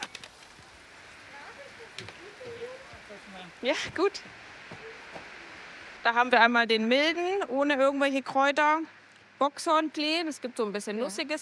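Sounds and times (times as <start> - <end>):
steady rain pattering: 0.0 - 11.4
faint voices murmuring: 1.1 - 5.8
speech: 3.4 - 4.4, 6.0 - 11.4.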